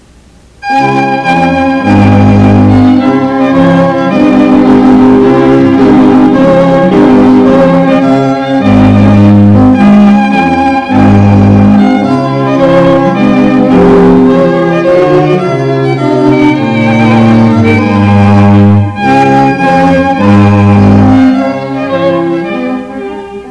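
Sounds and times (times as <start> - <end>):
trumpet tune: 0.6 - 23.4.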